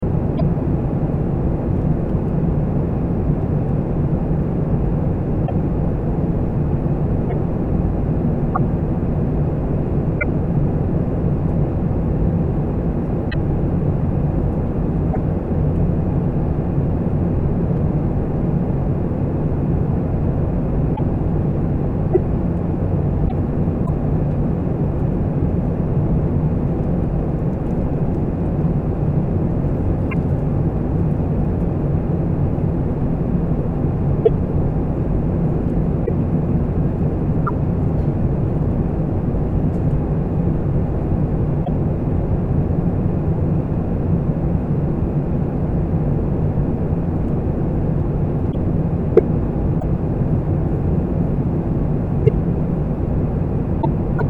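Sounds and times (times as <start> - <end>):
airplane: 0.0 - 54.2.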